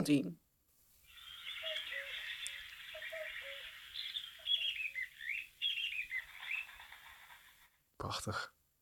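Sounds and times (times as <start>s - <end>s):
speech: 0.0s - 0.4s, 8.0s - 8.6s
chorus of chirping warbling songbirds: 0.8s - 8.3s
cuckoo calling: 1.0s - 7.8s
wing flapping: 1.1s - 7.8s.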